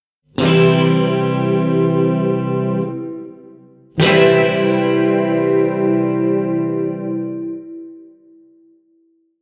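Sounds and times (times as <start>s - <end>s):
C chord with E B G harmonics: 0.4s - 8.5s.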